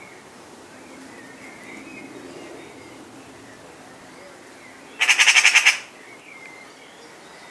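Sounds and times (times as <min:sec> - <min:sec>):
Eurasian magpie Pica pica rattling chatter: 0:05.0 - 0:05.9.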